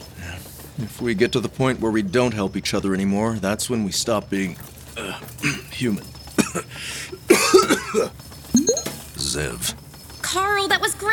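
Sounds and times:
speech: 0.8 - 7.2, 9.3 - 11.1
person coughing: 7.3 - 8.1.

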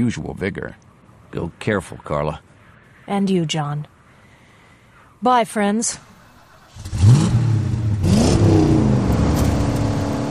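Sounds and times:
speech: 0.0 - 2.5, 3.1 - 3.9, 5.2 - 6.1
car engine revving as it pulls away hard across a highway: 6.6 - 10.2
car rear wheels spinning in loose dirt: 8.3 - 10.2.

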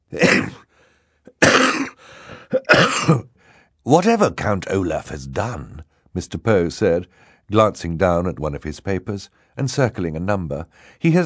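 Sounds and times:
person coughing harshly into a handkerchief: 0.2 - 0.7, 1.3 - 3.3
speech: 3.0 - 11.2.

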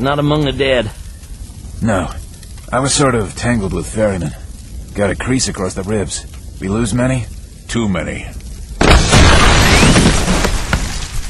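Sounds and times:
speech: 0.0 - 1.0, 1.8 - 4.4, 5.0 - 8.4
sustained roaring rumble with crackles and debris pops: 0.0 - 11.2
gas store building exploding in flames: 8.7 - 11.2.

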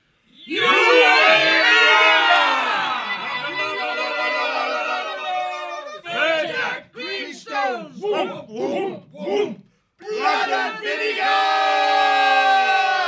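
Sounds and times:
crowd of charging warriors shouting war cries and battle shouts: 0.4 - 13.0.

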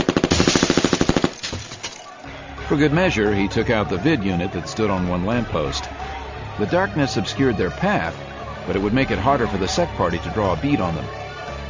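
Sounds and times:
mini-Uzi submachine gun firing short bursts: 0.0 - 1.4
speech: 2.7 - 11.2.

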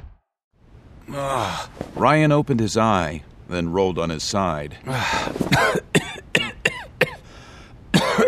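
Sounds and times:
speech: 1.1 - 5.8
harsh raspy coughing: 5.0 - 7.3, 7.9 - 8.2
wheezy breath: 7.2 - 7.8.

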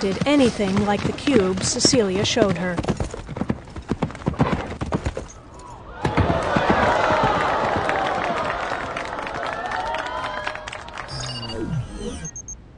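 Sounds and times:
speech: 0.0 - 3.0
horse hooves clip-clopping during a show jumping ride: 0.0 - 5.5
crowd roaring and cheering: 5.8 - 11.8.

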